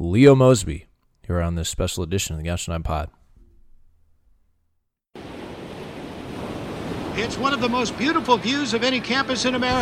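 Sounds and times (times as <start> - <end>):
speech: 0.0 - 3.2, 7.2 - 9.7
Pacific Ocean waves crashing on the shore: 5.2 - 9.7.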